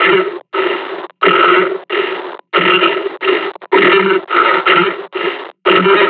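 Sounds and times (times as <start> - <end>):
person breathing: 0.2 - 3.7, 4.4 - 5.6.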